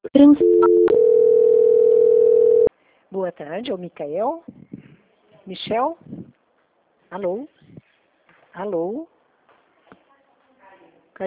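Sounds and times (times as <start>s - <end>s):
speech: 0.1s - 0.9s, 3.2s - 4.5s, 5.5s - 6.2s, 7.1s - 7.6s, 8.6s - 9.1s
steady telephone line tone during call transfer: 0.2s - 2.7s.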